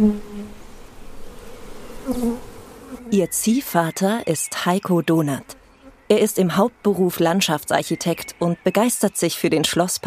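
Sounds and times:
speech: 0.0 - 0.3, 3.1 - 10.0
individual honeybees flying past: 0.0 - 3.3
honeybees buzzing around wooden hive boxes in the park of Schloss Friedenstein in Gotha: 0.0 - 10.0.

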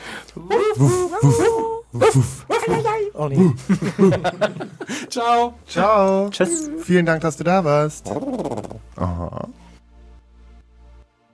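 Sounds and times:
people imitating drawn-out whimpering dog whines: 0.4 - 3.6, 6.4 - 6.8, 8.0 - 9.6
people imitating yippy dog barks: 0.4 - 3.6
speech: 0.4 - 9.6
laughter: 0.6 - 5.1.

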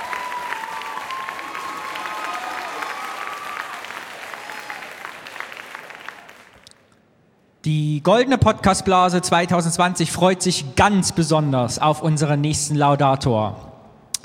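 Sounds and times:
audience applause of many hands clapping: 0.0 - 6.8
speech: 7.6 - 13.7.

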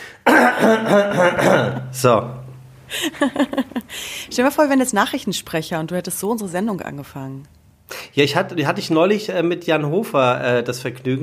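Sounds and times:
throat clearing: 0.2 - 1.9
laughter: 0.7 - 1.9, 3.0 - 3.9
speech: 2.0 - 11.2.

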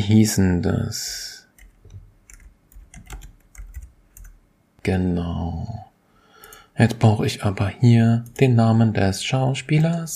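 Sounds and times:
speech: 0.0 - 1.3, 4.8 - 5.9, 6.8 - 10.1
clicking on a computer: 1.6 - 4.4, 6.4 - 6.6
typing on a computer keyboard: 1.6 - 4.4.

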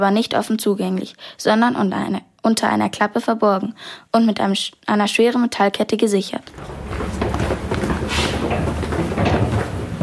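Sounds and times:
speech: 0.0 - 7.2
footsteps echoing through a narrow brick sewer tunnel: 6.4 - 10.0
sharper scrapes in a narrow brick sewer tunnel: 6.5 - 10.0.

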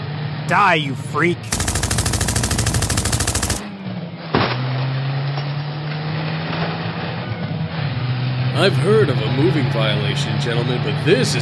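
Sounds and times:
speech: 0.5 - 1.7, 8.6 - 11.4
Tommy gun firing from a moving truck: 1.5 - 3.7
truck engine roar with a steady drone: 1.5 - 11.4.

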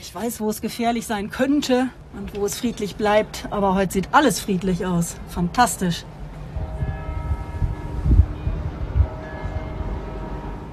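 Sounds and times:
speech: 0.1 - 6.2
church bells ringing: 6.5 - 10.7.

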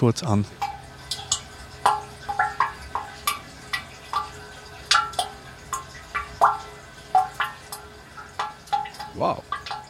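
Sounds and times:
speech: 0.0 - 0.7
water dripping inside a water catchment chamber: 0.4 - 9.8
gurgling plop: 0.6 - 9.8.

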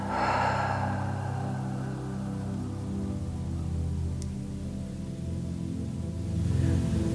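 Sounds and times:
slow deep breath drawn in through the nose: 0.0 - 3.3
steady low hum: 0.0 - 6.6.

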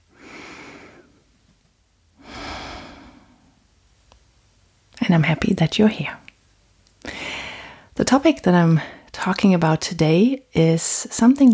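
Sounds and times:
deep breath taken slowly: 0.1 - 1.3, 2.2 - 3.6, 7.0 - 7.9
speech: 5.0 - 6.2, 8.0 - 11.5.

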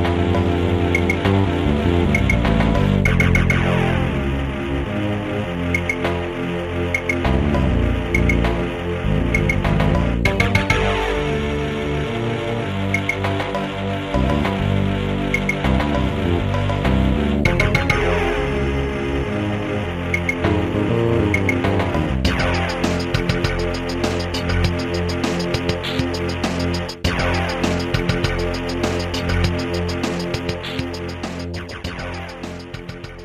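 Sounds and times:
atmospheric ambient video game soundtrack with layered sustained synth tones: 0.0 - 33.2.

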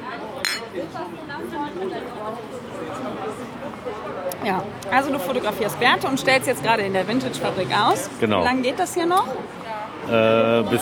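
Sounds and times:
crowd chatter and murmuring voices in a busy room: 0.0 - 10.7
glasses clinking in a toast: 0.4 - 0.7
speech: 0.7 - 10.7.

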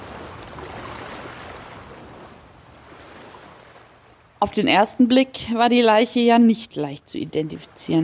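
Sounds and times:
faint rush of wind: 0.0 - 8.0
waves breaking on a beach: 0.0 - 8.0
speech: 4.4 - 8.0.

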